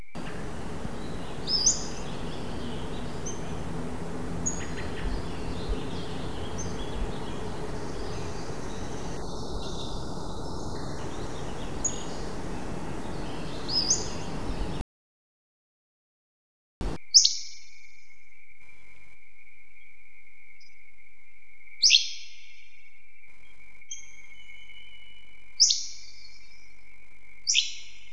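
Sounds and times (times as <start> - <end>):
Pacific-slope flycatcher and Hammond's flycatcher calling: 0.0 - 14.8, 17.0 - 17.6, 21.8 - 22.4, 23.9 - 26.6, 27.4 - 28.1.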